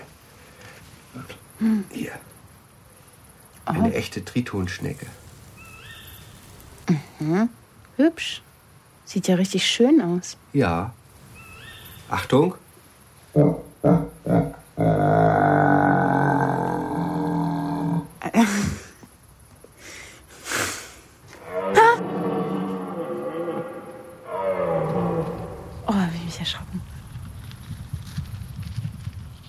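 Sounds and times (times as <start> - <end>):
speech: 1.2 - 2.3, 3.7 - 5.2, 6.9 - 8.5, 9.1 - 11.0, 12.1 - 12.6, 13.4 - 13.6
stag bellowing: 13.4 - 18.2, 21.4 - 25.9.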